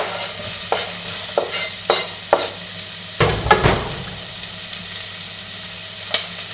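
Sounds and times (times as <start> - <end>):
onions sautéing in hot olive oil in a risotto pot: 0.0 - 6.5
louder clatter of the stirring utensil: 3.2 - 4.6.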